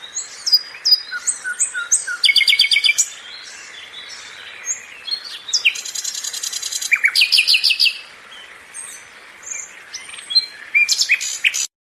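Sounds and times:
nightingale singing: 0:00.0 - 0:11.7.

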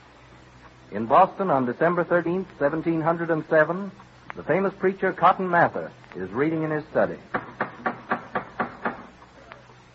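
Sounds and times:
speech: 0:00.9 - 0:07.4
parishioners knocking loudly at a door: 0:07.3 - 0:09.1.

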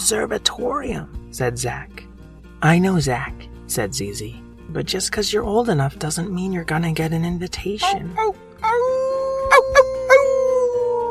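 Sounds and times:
speech: 0:00.1 - 0:09.9
sharp loud yelps: 0:07.8 - 0:11.0
eerie wolflike werewolf howl: 0:07.9 - 0:11.0.

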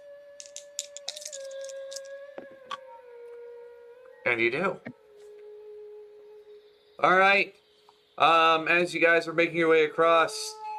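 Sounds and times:
dice clattering in a game: 0:00.4 - 0:02.1
speech: 0:04.3 - 0:05.0, 0:07.0 - 0:07.6, 0:08.2 - 0:10.6.

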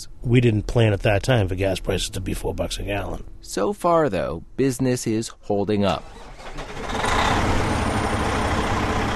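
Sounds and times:
speech: 0:00.0 - 0:07.0
big diesel tractor trailer truck idling at highway service plaza: 0:06.1 - 0:09.1.

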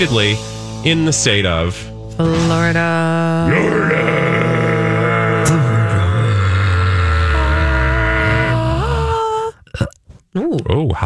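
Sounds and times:
speech: 0:00.0 - 0:04.2, 0:10.4 - 0:11.0
long loud burp: 0:03.5 - 0:10.0.

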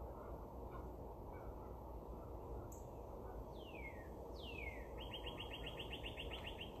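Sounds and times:
steady rushing wind or traffic: 0:00.0 - 0:06.7
bird singing outdoors with whistles and trill: 0:02.7 - 0:06.7.

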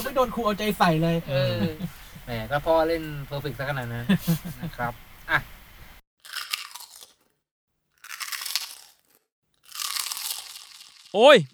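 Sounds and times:
laughter: 0:00.0 - 0:06.0
speech: 0:00.2 - 0:05.5, 0:11.1 - 0:11.5
crunching on a crispy fried corn pie-shaped snack: 0:06.2 - 0:11.2.

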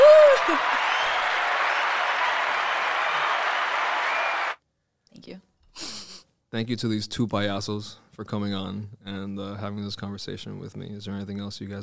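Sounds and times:
crowd applause sound effect from a button: 0:00.0 - 0:04.6
speech: 0:06.5 - 0:11.8.

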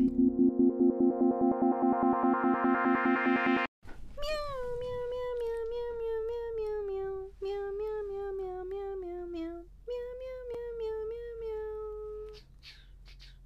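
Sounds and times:
rhythmic pulsing intro: 0:00.0 - 0:03.7
cat meowing a tune: 0:04.2 - 0:12.3.

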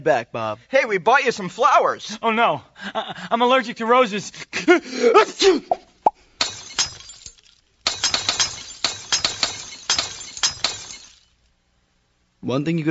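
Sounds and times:
speech: 0:00.0 - 0:05.8, 0:12.4 - 0:12.8
glass eyes shattering: 0:06.4 - 0:11.5.

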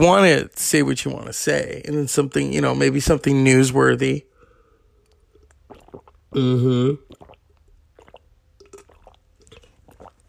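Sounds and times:
speech: 0:00.0 - 0:04.3, 0:06.3 - 0:07.1
person sipping and swallowing water: 0:04.4 - 0:10.2.

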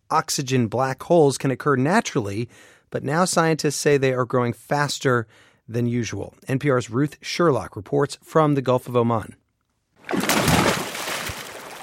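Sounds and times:
speech: 0:00.1 - 0:09.4
water sloshing and splashing as someone swims in the sea: 0:10.0 - 0:11.8.

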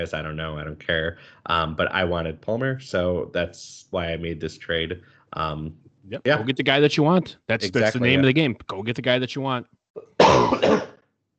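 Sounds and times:
speech: 0:00.0 - 0:10.9
coughing: 0:10.0 - 0:11.0
raspy throat clearing: 0:10.0 - 0:11.0.

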